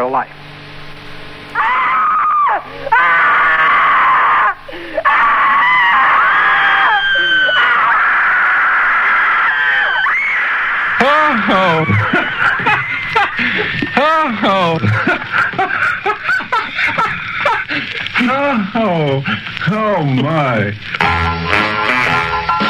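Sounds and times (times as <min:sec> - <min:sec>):
speech: 0:00.0 - 0:00.4, 0:02.6 - 0:03.2, 0:18.2 - 0:21.9
wavering trembling cries: 0:01.5 - 0:22.5
person screaming with high-pitched shrieks: 0:01.6 - 0:15.0
laughter: 0:02.7 - 0:21.0.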